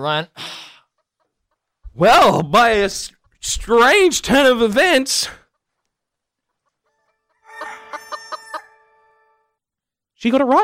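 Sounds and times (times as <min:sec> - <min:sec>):
speech: 0:00.0 - 0:00.5, 0:02.0 - 0:05.4, 0:10.2 - 0:10.6
chicken clucking: 0:05.4 - 0:09.3.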